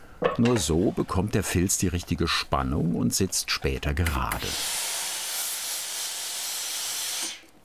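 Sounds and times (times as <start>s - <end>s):
speech: 0.4s - 4.8s
steam hissing from a steamer on felt: 4.3s - 7.5s.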